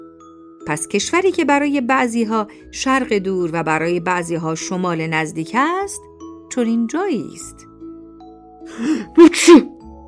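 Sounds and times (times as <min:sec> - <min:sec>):
speech: 0:00.7 - 0:07.7, 0:08.7 - 0:09.7
male teacher sneezing: 0:09.2 - 0:09.8.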